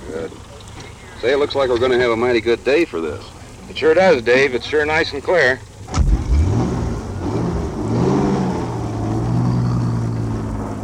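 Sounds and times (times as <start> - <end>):
speech: 1.2 - 5.7
car engine accelerating on a two-lane blacktop road: 5.8 - 10.8.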